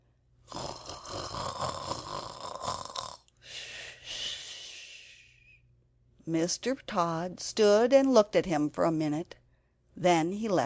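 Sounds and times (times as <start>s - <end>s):
voice imitating snoring: 0.5s - 3.3s
speech: 6.3s - 9.4s, 10.0s - 10.6s.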